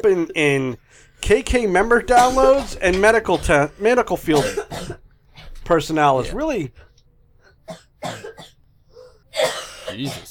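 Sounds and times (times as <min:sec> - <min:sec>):
speech: 0:00.0 - 0:05.0, 0:05.7 - 0:06.8, 0:07.7 - 0:08.5, 0:09.4 - 0:10.2
harsh dry coughing: 0:02.0 - 0:05.6, 0:07.4 - 0:10.2.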